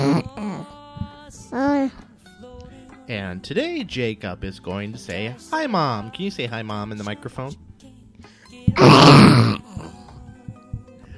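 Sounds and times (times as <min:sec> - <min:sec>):
speech: 0:03.1 - 0:07.7, 0:08.7 - 0:09.5
young child imitating a polar bear growl: 0:08.8 - 0:10.0.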